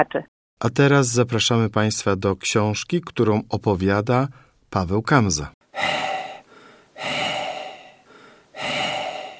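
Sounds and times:
speech: 0.0s - 6.1s
voice imitating heavy panting of a priest hurrying on a bicycle: 5.7s - 9.3s.

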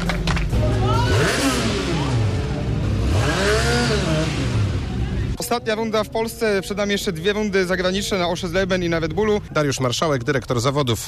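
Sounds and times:
racing motorcycle engines on an asphalt track: 0.0s - 9.5s
speech: 5.5s - 11.0s.

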